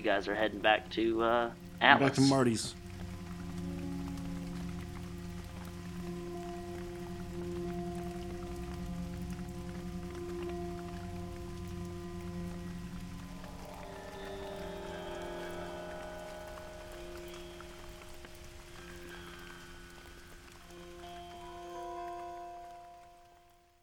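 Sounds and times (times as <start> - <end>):
speech: 0.0 - 2.8
low droning tones: 0.0 - 23.2
steady rain: 0.0 - 23.8.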